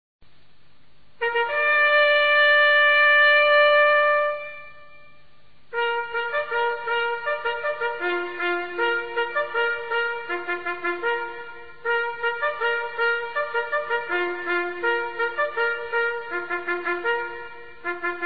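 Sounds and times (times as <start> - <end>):
bugle call: 1.2 - 18.2.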